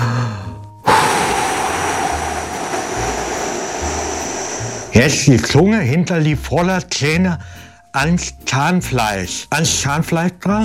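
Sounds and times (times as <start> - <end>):
strong exhale during a breathing exercise lying on the floor: 0.1 - 5.2
speech: 5.0 - 10.6.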